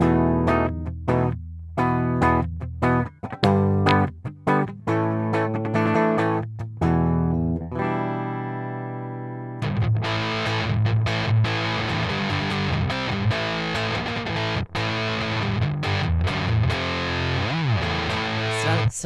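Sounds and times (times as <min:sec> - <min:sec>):
electric guitar strummed through a fuzz pedal: 0:00.0 - 0:19.0
electric guitar on bridge pickup playing clean notes: 0:06.8 - 0:18.8.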